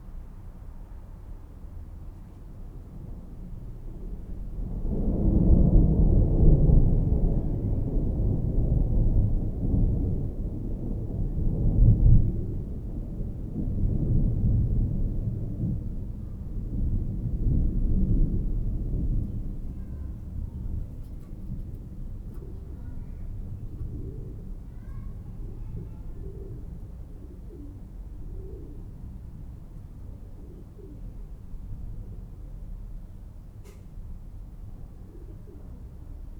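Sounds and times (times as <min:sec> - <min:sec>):
distant thunder: 0:04.3 - 0:32.2.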